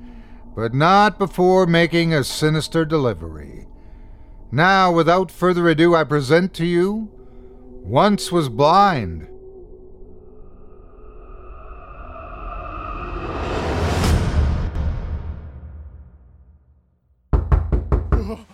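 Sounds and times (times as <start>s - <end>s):
speech: 0.6s - 3.8s, 4.5s - 7.2s, 7.8s - 9.3s
swelling whoosh: 9.2s - 16.2s
loud knocks on a door: 17.3s - 18.4s.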